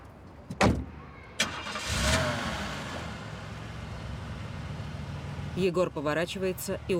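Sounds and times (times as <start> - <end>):
car engine starting: 1.4 - 5.6
speech: 5.6 - 6.9.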